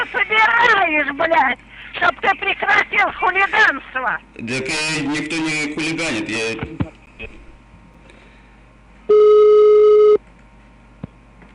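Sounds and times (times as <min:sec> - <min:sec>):
speech: 0:01.1 - 0:07.4
telephone busy signal after hang-up: 0:09.1 - 0:10.2.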